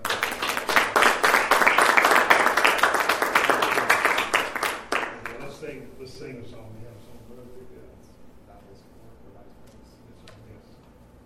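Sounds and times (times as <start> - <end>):
audience applauding: 0.0 - 5.6.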